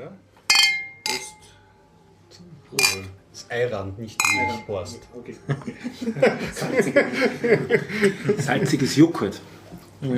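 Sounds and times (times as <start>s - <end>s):
speech: 0.0s - 0.3s, 2.7s - 10.1s
glasses clinking in a toast: 0.5s - 1.6s, 2.8s - 3.2s, 4.2s - 5.0s
laughter: 5.3s - 9.0s.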